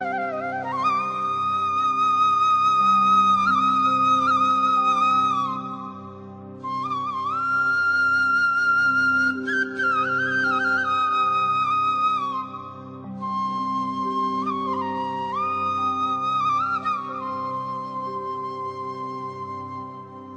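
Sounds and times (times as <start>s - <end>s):
flute ringtone: 0.0s - 20.3s.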